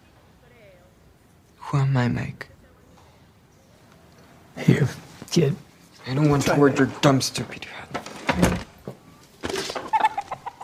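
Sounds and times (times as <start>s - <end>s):
speech: 1.7s - 2.5s, 4.6s - 8.7s
chicken clucking: 9.6s - 10.6s.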